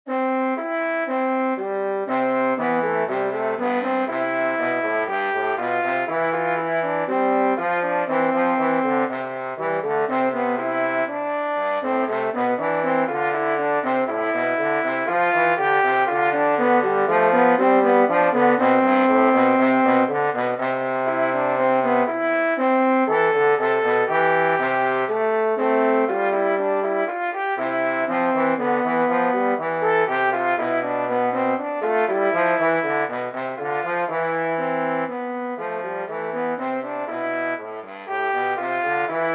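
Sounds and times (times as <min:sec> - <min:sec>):
two trombones playing a canon: 0:00.1 - 0:39.3.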